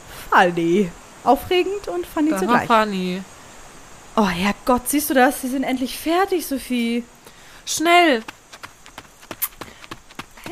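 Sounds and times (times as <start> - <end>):
speech: 0.4 - 3.3, 4.2 - 8.4
running footsteps: 7.7 - 10.4.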